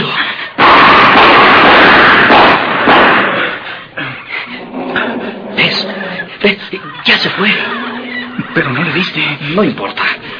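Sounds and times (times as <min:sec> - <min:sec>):
pistol gunshots: 0:00.6 - 0:03.6
laughter: 0:04.6 - 0:10.3
speech: 0:06.4 - 0:07.7, 0:08.5 - 0:10.3.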